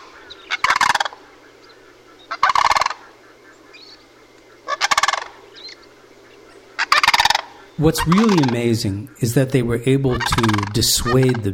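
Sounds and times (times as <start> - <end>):
male and female sandhill crane alarm calls: 0.0 - 11.5
steady low hum: 0.0 - 11.5
speech: 7.8 - 11.5.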